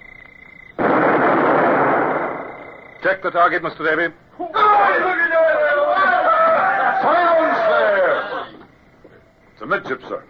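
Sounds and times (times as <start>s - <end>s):
faint steady high whine: 0.0s - 10.2s
ship's cannon firing a shot aboard a sailing warship: 0.8s - 3.0s
speech: 3.0s - 5.7s, 7.0s - 8.4s, 9.6s - 10.2s.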